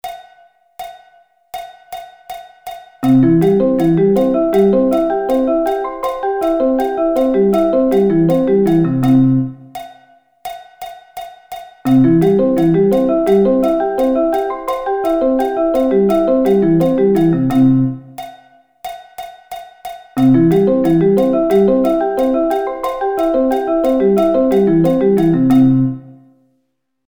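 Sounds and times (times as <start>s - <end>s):
C arpeggio inversions: 3.0s - 9.6s, 11.9s - 18.1s, 20.2s - 26.1s.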